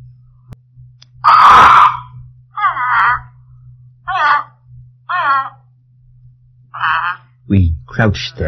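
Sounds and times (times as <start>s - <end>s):
low steady hum: 0.0s - 8.4s
caged parrot screeching and squawking in protest: 1.2s - 3.3s, 4.1s - 5.6s, 6.7s - 7.3s
speech: 7.5s - 8.4s.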